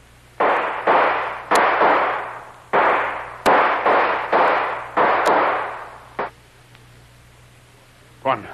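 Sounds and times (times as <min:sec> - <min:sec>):
gunshots: 0:00.4 - 0:06.3.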